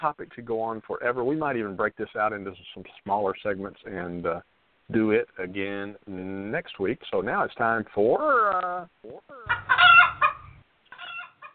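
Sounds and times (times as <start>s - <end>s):
speech: 0.0s - 10.0s
rooster crowing: 9.4s - 11.5s.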